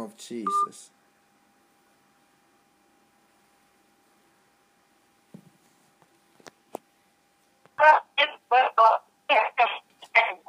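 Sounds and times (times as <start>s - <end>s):
speech: 0.0s - 1.0s
thin tinny phone-line voice breaking up: 7.8s - 10.4s.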